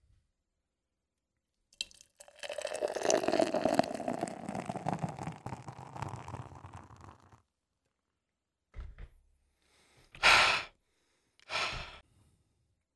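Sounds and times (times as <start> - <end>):
beer pouring into a glass: 1.8 - 7.4
person exhaling or sighing: 9.8 - 10.8, 11.4 - 12.0.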